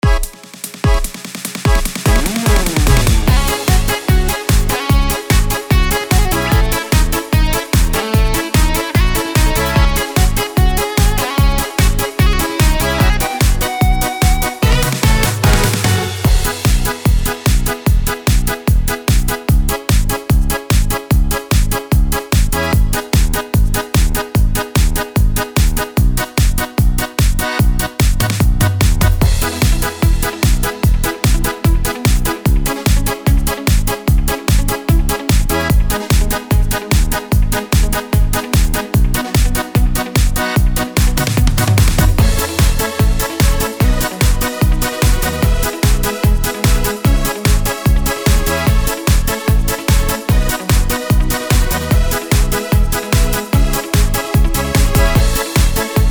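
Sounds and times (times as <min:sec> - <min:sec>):
Yamaha PSR S670 keyboard style: 0:00.0 - 0:56.0.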